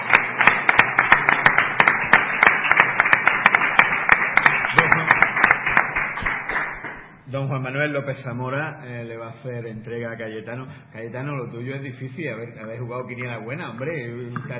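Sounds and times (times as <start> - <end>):
crowd applauding: 0.0 - 7.2
speech: 7.3 - 14.5.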